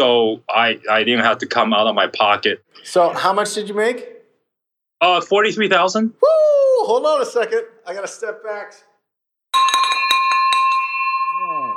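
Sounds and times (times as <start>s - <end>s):
speech: 0.0s - 4.1s, 5.0s - 8.9s
victory bell rung in celebration: 9.5s - 11.7s.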